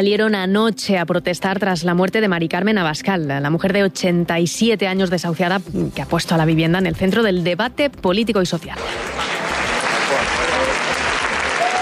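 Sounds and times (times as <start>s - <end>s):
speech: 0.0s - 9.6s
large protest crowd applauding outdoors: 8.8s - 11.7s.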